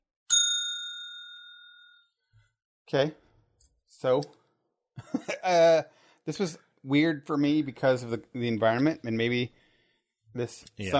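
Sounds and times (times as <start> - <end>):
single bright metallic bell ding: 0.3 - 2.2
speech: 2.9 - 3.2, 3.9 - 4.4, 5.0 - 9.6, 10.3 - 10.9.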